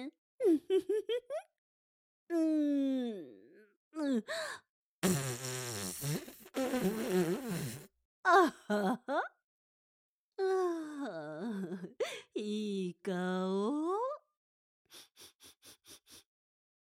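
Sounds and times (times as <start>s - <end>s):
speech: 0.0s - 1.3s, 2.3s - 3.4s, 4.0s - 9.4s, 10.4s - 14.2s
long noisy fart: 5.0s - 7.9s.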